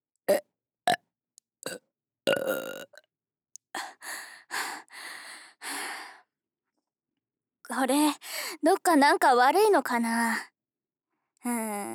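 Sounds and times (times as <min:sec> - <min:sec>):
person burping: 0:00.3 - 0:01.0, 0:01.6 - 0:03.0
speech: 0:07.7 - 0:10.5, 0:11.4 - 0:11.9.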